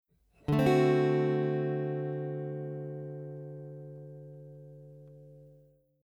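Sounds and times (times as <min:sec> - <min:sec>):
D7 guitar chord: 0:00.5 - 0:05.7.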